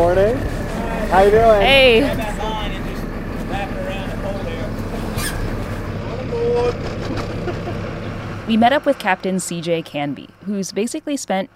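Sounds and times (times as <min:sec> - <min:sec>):
speech: 0:00.0 - 0:02.7, 0:08.5 - 0:11.5
wind: 0:00.0 - 0:10.7
voices: 0:00.0 - 0:10.8
commercial crabbing boat engine droning on open water: 0:00.0 - 0:11.5
laughter: 0:06.1 - 0:08.6.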